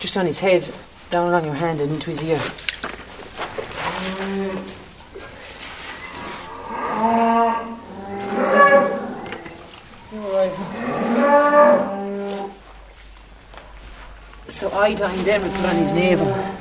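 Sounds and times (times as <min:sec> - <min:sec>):
speech: 0:00.2 - 0:02.7, 0:14.8 - 0:16.5
cow mooing beside newborn Red Limousin calf: 0:06.0 - 0:09.7, 0:10.6 - 0:12.5, 0:15.3 - 0:16.5.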